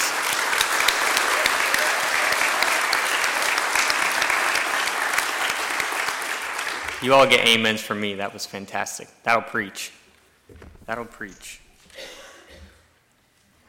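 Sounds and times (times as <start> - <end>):
large audience applauding: 0.0 - 7.4
speech: 7.0 - 12.2.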